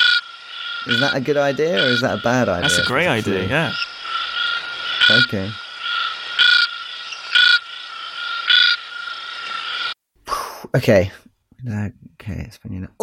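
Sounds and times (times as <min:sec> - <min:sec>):
frog calling in loud pulses: 0:00.0 - 0:10.0
steady high-pitched trilling chorus: 0:00.0 - 0:10.0
speech: 0:00.9 - 0:03.9, 0:05.1 - 0:05.6, 0:10.8 - 0:13.0
brief excited human voices: 0:01.8 - 0:03.8.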